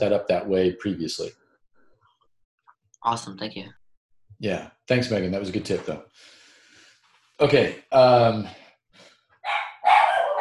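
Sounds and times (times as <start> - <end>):
speech: 0.0 - 1.4, 3.0 - 3.8, 4.4 - 6.4, 7.4 - 8.6
dog barking: 9.4 - 10.3.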